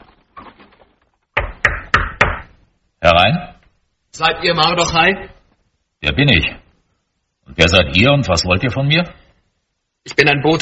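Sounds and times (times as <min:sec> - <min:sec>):
soldier knocking on the door of a house: 0:01.4 - 0:02.5
speech: 0:04.2 - 0:05.4, 0:06.0 - 0:06.6, 0:07.5 - 0:09.2, 0:10.0 - 0:10.6.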